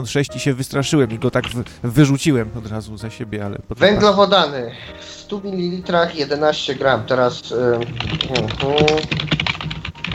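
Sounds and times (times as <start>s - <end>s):
speech: 0.0s - 9.5s
typing on a computer keyboard: 1.2s - 1.8s, 7.6s - 10.1s.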